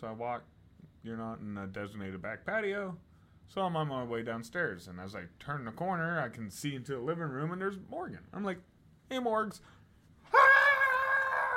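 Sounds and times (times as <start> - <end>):
speech: 0.0 - 10.4
person imitating a startled high-pitched scream: 10.3 - 11.5.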